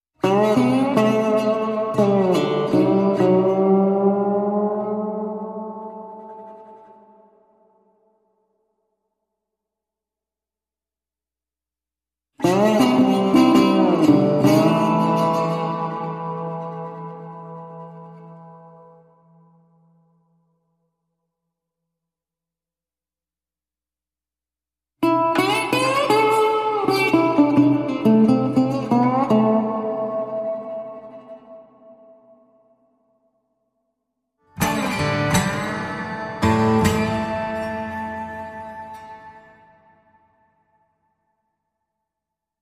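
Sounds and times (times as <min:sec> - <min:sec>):
guitar in A minor: 0:00.2 - 0:08.3, 0:12.4 - 0:20.4, 0:25.0 - 0:32.8, 0:34.4 - 0:41.1.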